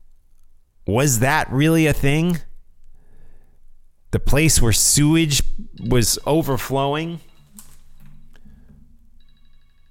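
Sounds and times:
speech: 0.9 - 2.5, 4.1 - 7.3
mobile phone electronic ringtone: 5.7 - 9.9.

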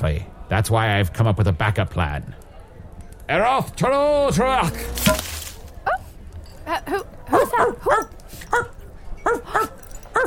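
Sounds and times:
speech: 0.0 - 2.4, 3.3 - 5.3, 6.7 - 8.7, 9.3 - 9.8
small dog barking and yipping: 7.3 - 10.2.

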